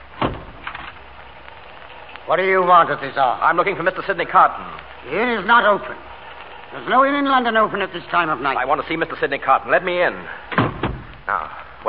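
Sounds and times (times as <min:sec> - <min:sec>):
speech: 0:02.3 - 0:06.1, 0:06.7 - 0:10.5, 0:11.3 - 0:11.8
door latch clunk: 0:10.5 - 0:11.1.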